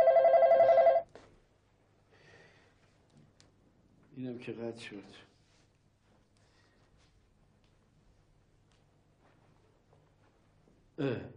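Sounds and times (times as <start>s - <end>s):
electronic telephone ringing unanswered: 0.0s - 1.1s
speech: 4.2s - 5.3s, 11.0s - 11.3s.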